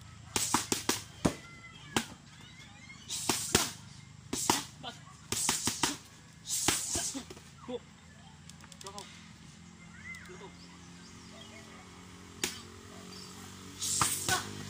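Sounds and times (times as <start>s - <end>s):
voices: 0.0s - 14.6s
sharp slapping punches in boxing training: 0.3s - 1.4s, 3.1s - 7.4s, 12.4s - 12.6s, 13.8s - 14.5s.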